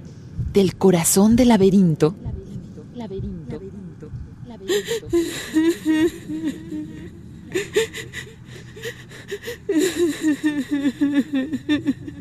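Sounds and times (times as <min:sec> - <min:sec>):
low hum: 0:00.0 - 0:12.1
speech: 0:00.5 - 0:02.3, 0:04.6 - 0:12.1
woman sobbing: 0:04.5 - 0:12.1
sharp gasping breaths: 0:04.7 - 0:11.1.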